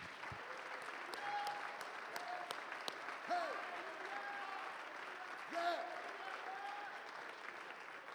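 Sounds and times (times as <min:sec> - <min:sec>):
congregation clapping hands: 0:00.0 - 0:08.1.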